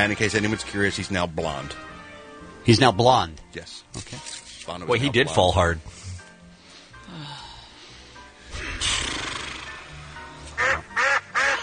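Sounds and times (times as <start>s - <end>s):
speech: 0.0s - 2.0s, 2.6s - 6.0s
flying ducks quacking: 10.6s - 11.6s.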